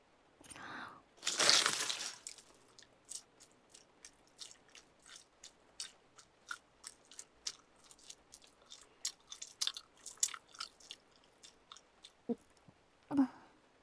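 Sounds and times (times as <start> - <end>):
loud crunchy chewing: 1.2 - 12.7.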